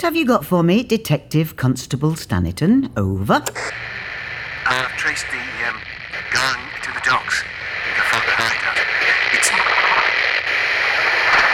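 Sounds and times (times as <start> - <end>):
speech: 0.0 - 4.0, 5.0 - 5.8
radio static interference on a police radio transmission: 3.5 - 11.5.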